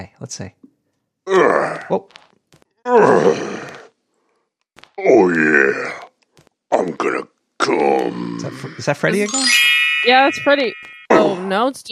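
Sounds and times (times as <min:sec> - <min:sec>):
speech: 0:00.0 - 0:00.6, 0:01.3 - 0:03.6, 0:05.0 - 0:06.0, 0:08.1 - 0:11.8
magical fairy-like tinkling chime recorded in a forest: 0:09.0 - 0:11.1.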